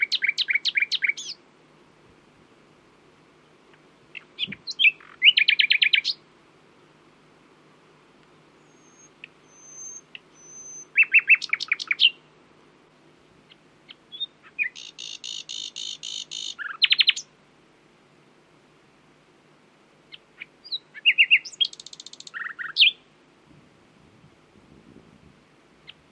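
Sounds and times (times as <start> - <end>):
Common nightingale Luscinia megarhynchos song: 0.0 - 1.5, 3.3 - 6.9, 8.2 - 12.4, 13.3 - 17.4, 20.0 - 23.2, 25.6 - 26.1.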